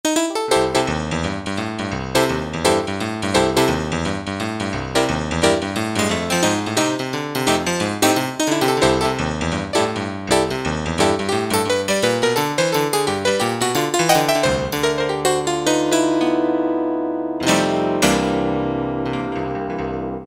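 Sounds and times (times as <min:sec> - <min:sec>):
piano preset on a Roland SC-50 Sound Canvas: 0:00.0 - 0:20.2.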